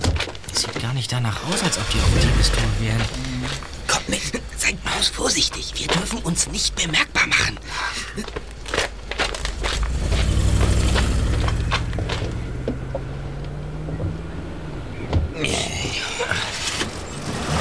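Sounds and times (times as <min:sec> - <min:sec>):
speech: 0:00.9 - 0:08.5
low droning car engines pulling away: 0:01.4 - 0:06.8, 0:09.2 - 0:17.5
crackles and rustling: 0:02.3 - 0:13.6.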